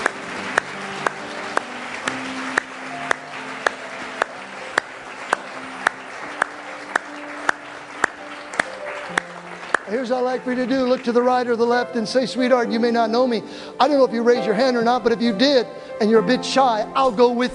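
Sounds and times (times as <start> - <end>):
audience clapping in unison: 0.0 - 11.8
soft sustained music: 0.0 - 17.5
speech: 10.0 - 17.5.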